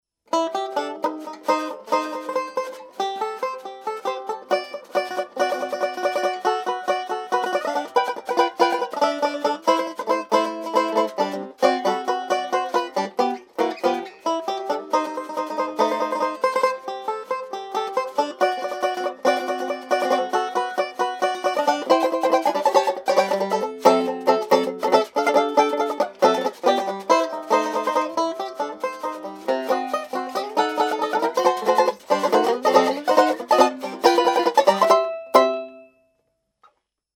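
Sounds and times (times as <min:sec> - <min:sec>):
banjos playing a tenor fall: 0:00.3 - 0:35.9.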